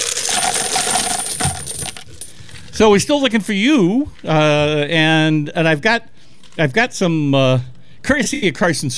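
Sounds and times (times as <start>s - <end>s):
coins tossed during a penny-pitch fundraiser: 0.0s - 2.4s
speech: 2.8s - 8.9s.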